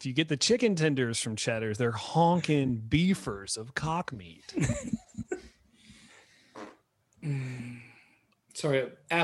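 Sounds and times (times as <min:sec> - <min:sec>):
speech: 0:00.0 - 0:05.0, 0:07.2 - 0:07.8, 0:08.6 - 0:09.2
faint fart at a meal table: 0:06.5 - 0:06.8.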